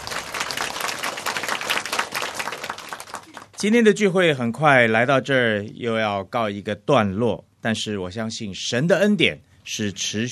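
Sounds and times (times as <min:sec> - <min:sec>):
crowd applauding: 0:00.0 - 0:03.6
speech: 0:03.6 - 0:10.2.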